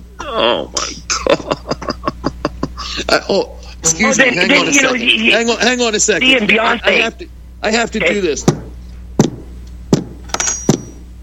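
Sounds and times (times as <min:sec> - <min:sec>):
speech: 0:00.3 - 0:01.8, 0:03.0 - 0:08.6
laughter: 0:01.1 - 0:07.2
dull solid thuds: 0:08.4 - 0:11.0.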